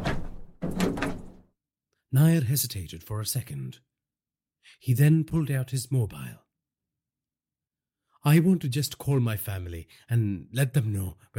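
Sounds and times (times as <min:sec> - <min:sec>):
rusty door being pulled open: 0:00.0 - 0:01.4
speech: 0:02.1 - 0:03.9, 0:04.6 - 0:06.4, 0:08.2 - 0:11.3.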